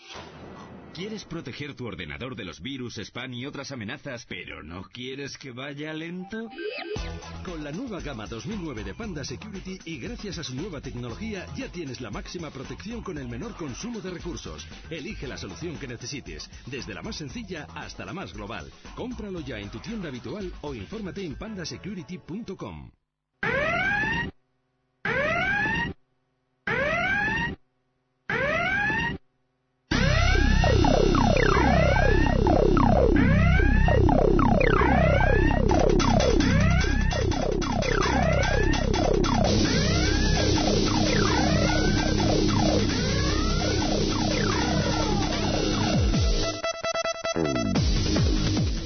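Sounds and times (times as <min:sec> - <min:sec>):
speech: 0:01.0 - 0:23.0
short electronic alarm bursts: 0:23.4 - 0:24.3, 0:25.1 - 0:26.0, 0:26.7 - 0:27.6, 0:28.3 - 0:29.2, 0:29.9 - 0:48.8
overlapping sirens and security alert tones wailing: 0:26.7 - 0:27.5, 0:28.3 - 0:29.1, 0:29.9 - 0:48.0.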